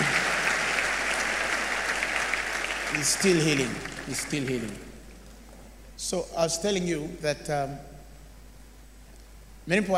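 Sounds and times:
audience applauding: 0.0 - 5.0
speech: 2.9 - 4.9, 6.0 - 7.9, 9.6 - 9.9.

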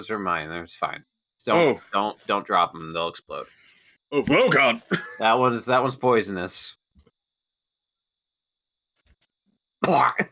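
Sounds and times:
speech: 0.0 - 6.8, 9.8 - 10.3
harsh cough: 4.3 - 5.2, 9.8 - 10.3.

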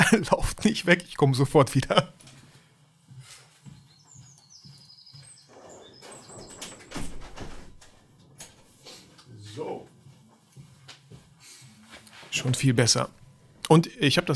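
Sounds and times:
laughter: 0.0 - 2.2
speech: 0.1 - 2.2, 12.6 - 14.3
bird chirping outside: 3.6 - 7.6
French glass door pulled shut with a rattling slide and clunk: 5.5 - 8.0.

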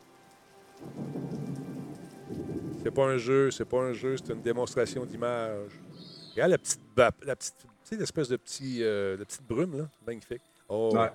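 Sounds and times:
steady rain in a game engine tech demo: 0.0 - 9.9
speech: 2.8 - 11.1.

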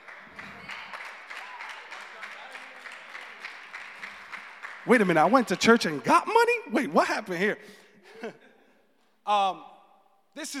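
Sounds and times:
audience applause in a church: 0.0 - 6.6
speech: 4.8 - 8.4, 9.3 - 9.7, 10.4 - 10.5.

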